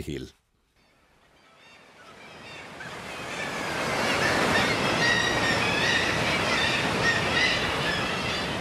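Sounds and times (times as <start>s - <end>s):
speech: 0.0s - 0.4s
kittiwakes crying on Skellig Mhíle off Kerry, Ireland: 1.6s - 8.5s
waves crashing on Skellig Mhíle off Kerry, Ireland: 1.8s - 8.5s.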